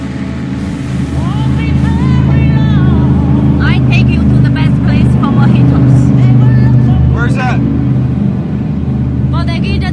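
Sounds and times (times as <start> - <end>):
faint wash of water beneath a motorboat: 0.0 - 9.9
motorboat engine droning at sea: 0.0 - 9.9.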